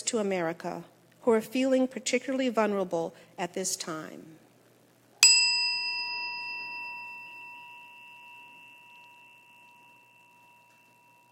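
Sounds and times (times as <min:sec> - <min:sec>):
speech: 0:00.1 - 0:04.4
single bell struck with clear bright ding: 0:05.2 - 0:11.3.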